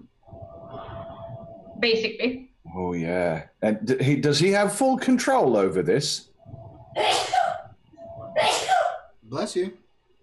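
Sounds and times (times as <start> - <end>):
speech: 1.8 - 6.3, 7.0 - 7.4, 9.4 - 9.8
person sneezing: 7.0 - 7.6, 8.4 - 9.0.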